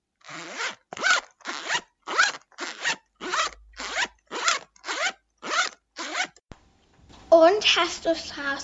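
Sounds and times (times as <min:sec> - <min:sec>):
pencil case zipper pulled open and shut: 0:00.2 - 0:06.4
speech: 0:07.5 - 0:08.6.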